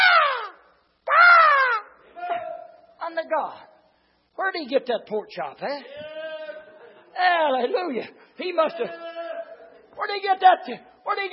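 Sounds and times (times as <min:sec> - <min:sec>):
person's voice imitating harsh raven caws: 0:00.0 - 0:02.0
speech: 0:03.3 - 0:03.7, 0:04.4 - 0:06.2, 0:07.2 - 0:09.0, 0:10.0 - 0:11.3.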